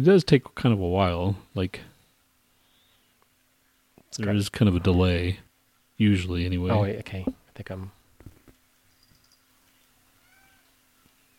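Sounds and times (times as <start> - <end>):
speech: 0.0 - 1.9, 4.1 - 5.4, 6.0 - 8.0
steady low electrical hum: 0.0 - 11.3
cat meowing softly: 10.2 - 10.7.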